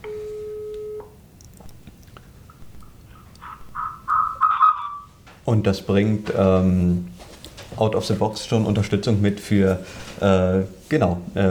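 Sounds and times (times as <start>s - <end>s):
steady electronic phone tone from an N900 Linux phone call: 0.0s - 1.2s
speech: 5.5s - 7.1s, 7.8s - 11.4s.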